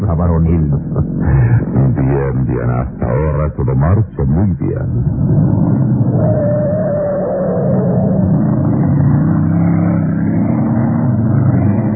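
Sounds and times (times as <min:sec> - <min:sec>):
road noise: 0:00.0 - 0:03.3, 0:04.9 - 0:11.9
speech: 0:00.1 - 0:06.8
small car engine accelerating through deserted streets: 0:05.3 - 0:11.9.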